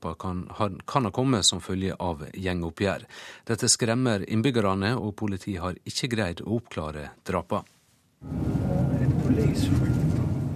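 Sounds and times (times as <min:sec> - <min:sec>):
speech: 0:00.0 - 0:10.2
car driving through Malmö Sweden: 0:08.2 - 0:10.5.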